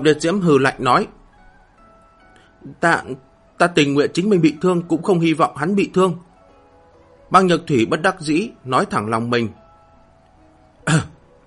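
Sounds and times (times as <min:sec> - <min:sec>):
speech: 0:00.0 - 0:01.2, 0:02.6 - 0:06.3, 0:07.3 - 0:09.6, 0:10.9 - 0:11.2
dry cough from an injured man: 0:10.8 - 0:11.2.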